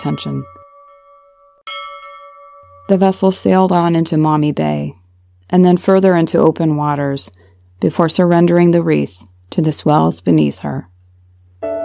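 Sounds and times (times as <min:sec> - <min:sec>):
speech: 0:00.0 - 0:00.6, 0:02.9 - 0:10.9
ship's bell tolling: 0:00.0 - 0:02.9.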